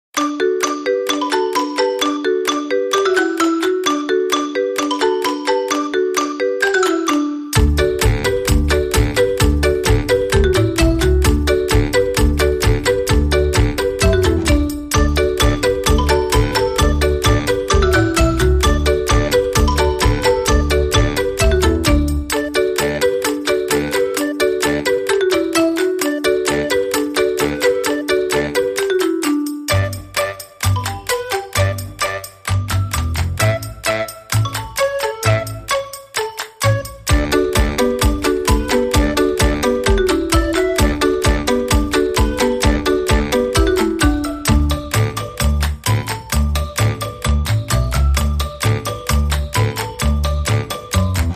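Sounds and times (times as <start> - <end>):
marimba without clicks: 0.2 - 51.3.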